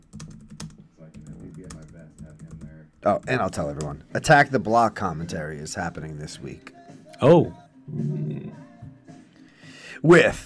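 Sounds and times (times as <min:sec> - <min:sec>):
typing on a computer keyboard: 0:00.0 - 0:03.9
speech: 0:03.0 - 0:08.2, 0:10.0 - 0:10.4.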